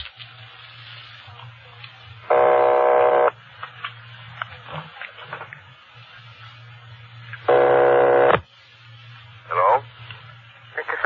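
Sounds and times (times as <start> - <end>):
low telephone line hum: 0.1 - 11.0
telephone line ringback tones: 2.3 - 3.3, 7.5 - 8.4.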